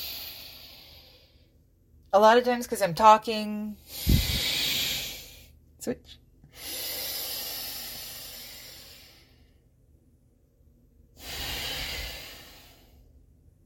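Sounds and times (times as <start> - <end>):
slow breathing in a balancing breath exercise: 0.0 - 1.6, 3.8 - 5.6, 6.4 - 9.7, 11.1 - 13.3
speech: 2.1 - 4.3, 5.8 - 6.9.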